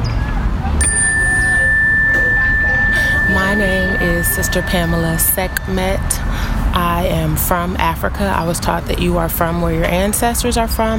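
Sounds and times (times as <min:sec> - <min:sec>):
chime bell ringing: 0:00.8 - 0:07.3
low rumbling hum: 0:00.8 - 0:08.6
speech: 0:04.3 - 0:10.9.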